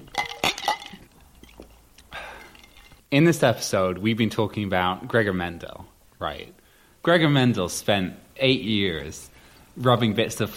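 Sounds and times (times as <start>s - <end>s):
glasses clinking in a toast: 0.0s - 3.1s
soft rustling clattering burst: 0.0s - 3.1s
speech: 3.1s - 10.5s.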